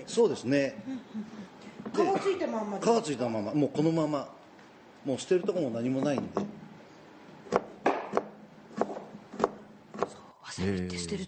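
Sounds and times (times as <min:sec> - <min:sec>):
speech: 0:00.1 - 0:04.4, 0:05.0 - 0:06.6, 0:10.6 - 0:11.2
knife slicing a firm root vegetable into rounds on a board: 0:07.5 - 0:10.2.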